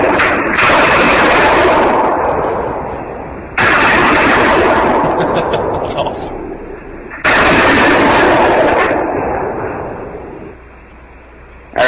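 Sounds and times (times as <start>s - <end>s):
rifle shot: 0.0s - 10.7s
roaring echo of a rifle shot: 0.0s - 11.8s
laughter: 5.0s - 6.3s.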